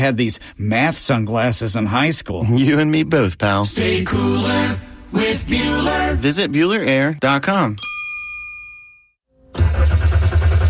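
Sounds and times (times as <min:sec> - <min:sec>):
speech: 0:00.0 - 0:08.0
car engine cranking without starting: 0:09.5 - 0:10.6.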